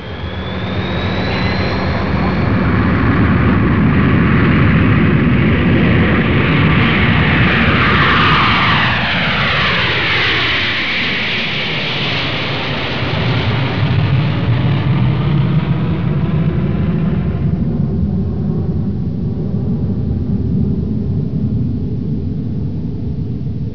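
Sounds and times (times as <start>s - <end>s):
Boeing 707 jet airliner taking off: 0.0s - 23.7s.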